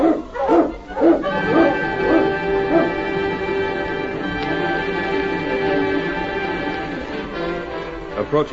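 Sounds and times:
husky sled dogs barking and yipping as sled team starts: 0.0 - 3.8
steady sustained tone: 0.0 - 8.5.

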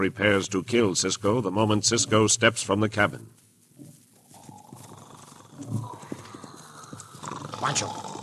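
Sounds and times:
speech: 0.0 - 3.4, 7.7 - 8.1
hoofbeats of a horse carrying a dummy rider: 1.9 - 8.2.

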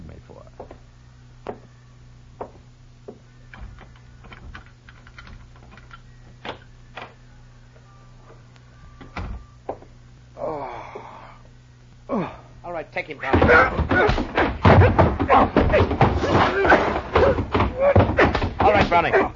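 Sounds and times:
low steady hum: 0.0 - 19.3
knocks and thumps: 2.4 - 4.6, 13.3 - 19.3
speech: 12.9 - 14.3, 19.0 - 19.3.

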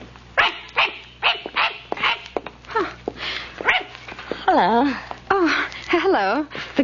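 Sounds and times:
small dog barking: 0.4 - 2.3, 3.6 - 4.0
speech: 4.6 - 5.1, 6.2 - 6.8.

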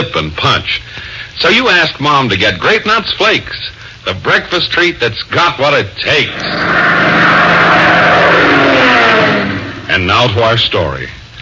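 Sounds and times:
speech: 0.0 - 8.0, 9.9 - 11.2
car engine droning while driving: 6.2 - 10.1.

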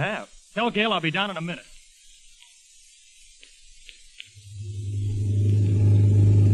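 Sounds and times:
speech: 0.0 - 1.7
faint ticks: 1.7 - 4.6
new car engine rumbling along a street: 4.5 - 6.5.

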